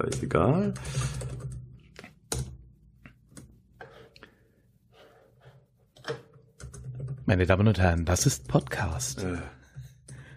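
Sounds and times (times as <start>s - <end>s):
speech: 0.0s - 1.3s, 7.3s - 9.6s
computer keyboard typing: 0.0s - 1.6s.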